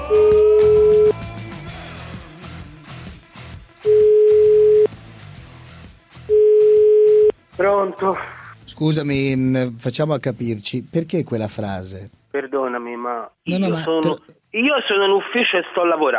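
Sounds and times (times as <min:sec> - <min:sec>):
telephone ringback tone beeps: 0:00.2 - 0:01.1, 0:03.9 - 0:04.9, 0:06.3 - 0:07.3
speech: 0:07.7 - 0:16.1.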